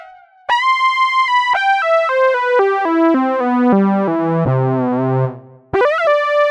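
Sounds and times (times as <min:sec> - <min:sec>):
synthesizer lead factory patch: 0:00.5 - 0:06.4.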